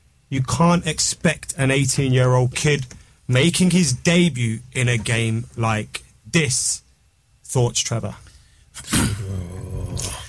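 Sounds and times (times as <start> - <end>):
speech: 0.3 - 6.8, 7.5 - 8.2
low rumbling growl: 8.9 - 10.2.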